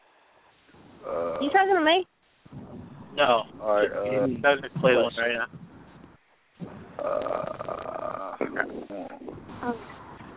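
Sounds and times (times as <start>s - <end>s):
long rough gurgling burp: 1.0s - 1.6s, 3.6s - 4.4s, 7.0s - 9.3s
speech: 1.0s - 2.1s, 3.2s - 5.6s, 7.0s - 7.7s.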